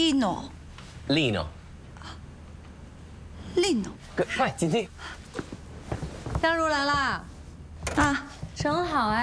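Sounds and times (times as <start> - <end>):
speech: 0.2 - 1.6, 3.6 - 5.1, 6.4 - 7.3, 7.9 - 9.2
front door creaking open: 7.8 - 8.3
front door latch clicking and knocking: 7.9 - 8.2.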